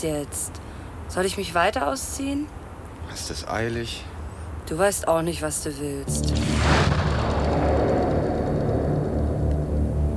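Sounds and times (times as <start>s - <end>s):
speech: 0.0s - 4.1s, 4.7s - 7.0s
deep roaring rumble of flames after an explosion: 6.1s - 10.1s
explosion with a huge jet of flame on a car park: 6.1s - 10.1s.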